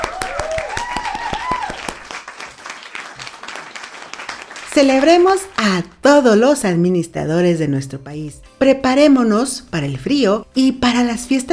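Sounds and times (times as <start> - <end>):
cheers: 0.0 - 2.3
crowd applauding: 0.0 - 5.4
speech: 4.8 - 11.5.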